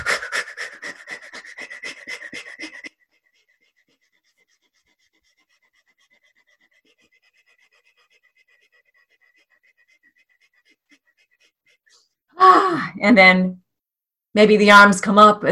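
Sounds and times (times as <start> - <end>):
rapid fire breathing exercise in through the nose and out through the mouth: 0.0 - 12.4
speech: 13.0 - 13.6, 14.4 - 15.5.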